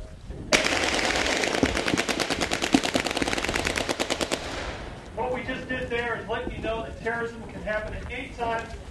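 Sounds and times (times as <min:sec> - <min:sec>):
rapid automatic gunfire from a mock terrorist attack demonstration: 0:00.5 - 0:04.9
man speaking: 0:05.2 - 0:08.7.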